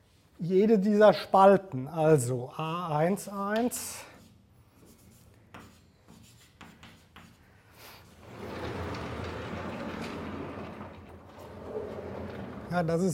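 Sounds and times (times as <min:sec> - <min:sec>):
speech: 0:00.4 - 0:04.1, 0:12.7 - 0:13.1
pen scratching on paper drawing a diagram by hand: 0:04.2 - 0:07.4.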